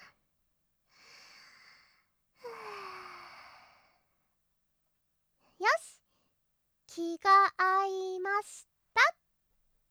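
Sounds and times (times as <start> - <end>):
two deep breaths taken together in unison: 0.9 - 4.2
speech: 7.2 - 9.1.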